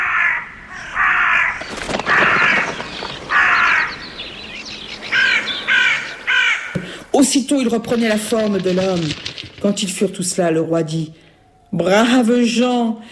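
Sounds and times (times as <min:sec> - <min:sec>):
flock of crows cawing: 0:00.0 - 0:07.1
speech: 0:07.2 - 0:13.1.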